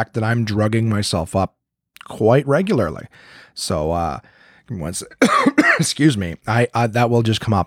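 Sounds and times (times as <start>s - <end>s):
speech: 0.0s - 7.6s
person with a sore throat and allergies coughing: 5.2s - 6.0s.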